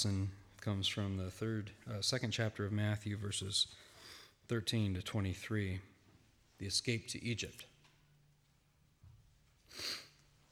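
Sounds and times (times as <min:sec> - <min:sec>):
speech: 0:00.0 - 0:03.9, 0:04.5 - 0:05.9, 0:06.6 - 0:07.7, 0:09.7 - 0:10.0
nasal sniff from a person with a sinus infection: 0:09.7 - 0:10.2.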